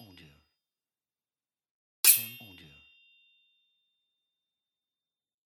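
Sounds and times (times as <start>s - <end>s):
sword hit in a fight: 2.1s - 2.4s.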